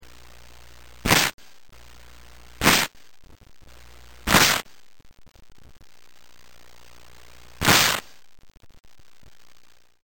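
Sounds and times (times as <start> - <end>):
ripping: 1.1 - 1.3, 2.6 - 2.9, 4.3 - 4.6, 7.6 - 8.2.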